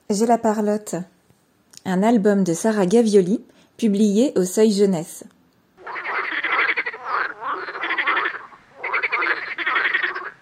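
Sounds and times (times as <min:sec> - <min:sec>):
speech: 0:00.1 - 0:01.1, 0:01.8 - 0:05.4
frog croaking in rapid rattling trills: 0:05.8 - 0:10.4.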